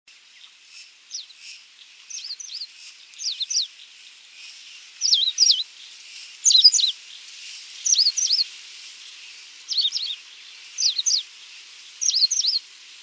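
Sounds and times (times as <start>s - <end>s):
coal-crested finch giving short high sharply wavering calls: 2.1s - 3.8s, 5.0s - 5.7s, 6.4s - 7.0s, 7.8s - 8.5s, 9.7s - 10.2s, 10.8s - 11.3s, 12.0s - 13.0s.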